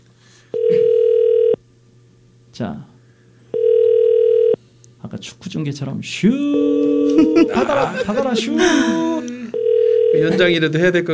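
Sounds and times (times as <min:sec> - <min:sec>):
telephone ringback tone while waiting for a call to be answered: 0:00.6 - 0:01.6, 0:03.5 - 0:04.6, 0:06.6 - 0:07.5, 0:09.5 - 0:10.4
speech: 0:02.6 - 0:02.9, 0:05.1 - 0:09.2, 0:10.2 - 0:11.1
laughter: 0:07.0 - 0:09.5.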